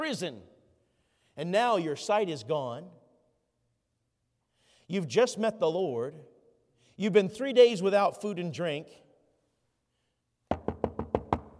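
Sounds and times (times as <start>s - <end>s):
speech: 0.0s - 0.5s, 1.4s - 3.0s, 4.9s - 6.3s, 7.0s - 9.0s
sharp woody knocks on a door: 10.5s - 11.5s.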